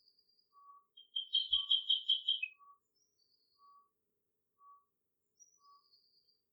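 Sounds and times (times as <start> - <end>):
bird calls with rapid trilled notes in riverside woodland: 1.0 - 2.5.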